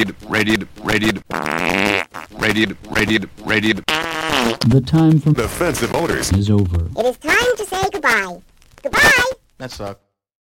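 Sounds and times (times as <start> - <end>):
voice imitating a South American farting frog: 0.0 - 6.9
speech: 0.0 - 10.0.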